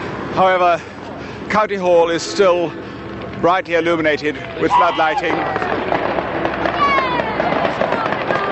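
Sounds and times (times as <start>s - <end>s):
speech: 0.4s - 0.9s, 1.5s - 5.8s
outdoor crowd noise and murmuring voices: 0.8s - 8.5s
fireworks display crackling and popping: 4.2s - 8.5s.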